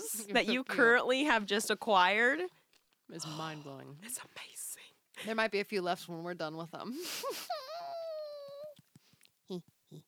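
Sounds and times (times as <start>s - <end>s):
speech: 0.3s - 4.6s, 5.2s - 7.6s, 9.5s - 10.0s
dog whimpering: 7.5s - 8.8s.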